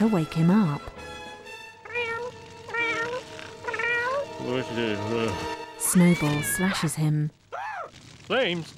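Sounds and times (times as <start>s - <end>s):
speech: 0.0s - 1.1s, 4.4s - 7.4s, 8.3s - 8.7s
cat meowing: 1.8s - 4.4s, 5.9s - 7.9s.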